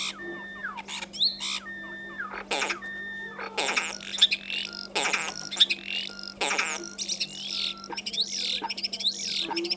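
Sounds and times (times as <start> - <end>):
common starling singing: 0.0 - 9.7
constant low hum: 0.0 - 9.7.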